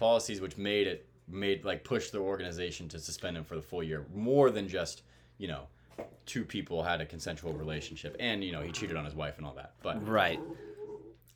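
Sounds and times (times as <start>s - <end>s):
speech: 0.0s - 10.7s
puppy whimpering in a thin high-pitched whine: 10.0s - 11.2s.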